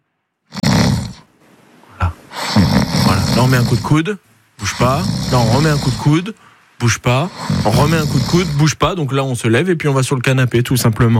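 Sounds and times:
person snoring loudly and roughly: 0.5s - 1.2s, 2.0s - 4.0s, 4.6s - 6.3s, 7.0s - 8.8s
speech: 3.4s - 11.1s.

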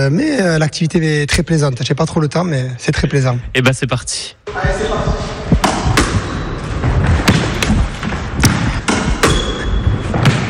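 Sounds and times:
speech: 0.0s - 5.3s
noise: 0.0s - 10.4s
ball hit back and forth in a racket sport rally: 5.6s - 10.4s.

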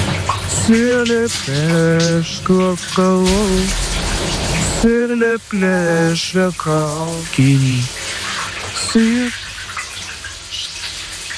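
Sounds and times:
shower running: 0.0s - 11.3s
man singing in the shower: 0.5s - 4.0s, 4.7s - 8.0s, 8.8s - 9.4s
speech: 0.7s - 8.0s, 8.9s - 9.4s.

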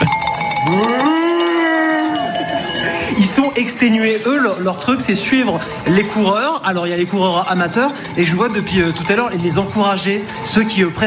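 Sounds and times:
cowbells clanging from a herd of cows: 0.0s - 11.0s
cow letting out a long rising moo: 0.6s - 3.2s
speech: 3.6s - 11.0s.

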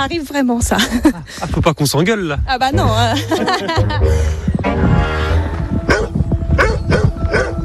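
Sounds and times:
speech: 0.0s - 5.4s
laughter: 2.9s - 4.4s
dog barking: 5.9s - 7.6s.

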